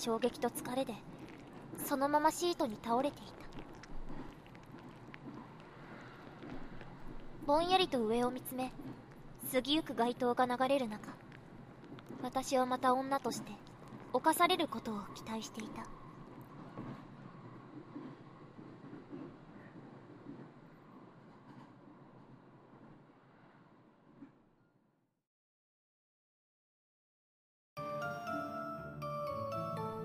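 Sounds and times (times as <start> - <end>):
speech: 0.0 - 3.6, 7.4 - 11.2, 12.2 - 16.0
train interior rumble while riding: 0.0 - 24.3
music: 27.8 - 30.0.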